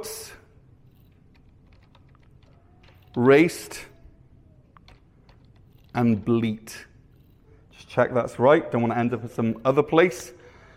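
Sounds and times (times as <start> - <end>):
speech: 0.0 - 0.4, 3.2 - 3.9, 6.0 - 6.9, 7.9 - 10.4
typing words on a computer keyboard: 0.9 - 6.0.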